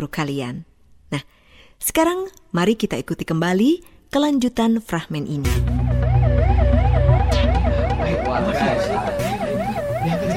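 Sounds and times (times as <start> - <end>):
speech: 0.0 - 5.8
ambulance siren warbling: 5.5 - 10.3.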